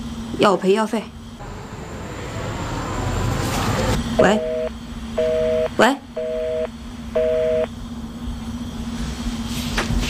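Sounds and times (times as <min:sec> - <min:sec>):
low steady hum: 0:00.0 - 0:09.6
speech: 0:00.4 - 0:01.2, 0:04.2 - 0:04.5, 0:05.2 - 0:06.3
phone line busy tone after a hang-up: 0:04.2 - 0:07.7.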